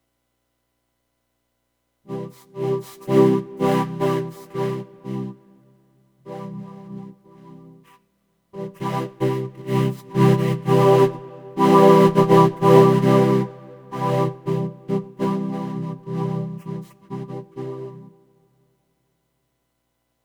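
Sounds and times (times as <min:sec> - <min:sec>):
analog synth vocoder: 0:02.1 - 0:05.5, 0:08.6 - 0:18.1.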